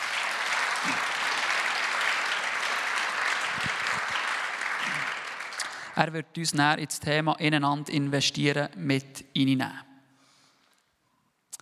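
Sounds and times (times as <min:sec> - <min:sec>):
applause from a large gathering: 0:00.0 - 0:06.0
speech: 0:06.0 - 0:09.9.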